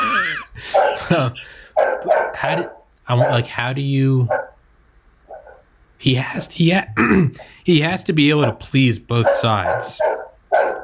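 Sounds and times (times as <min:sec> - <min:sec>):
dog barking with yipping and whining: 0:00.6 - 0:01.2, 0:01.8 - 0:03.6, 0:04.2 - 0:04.6, 0:05.3 - 0:05.7, 0:08.4 - 0:10.8
speech: 0:01.1 - 0:04.4, 0:06.0 - 0:10.2.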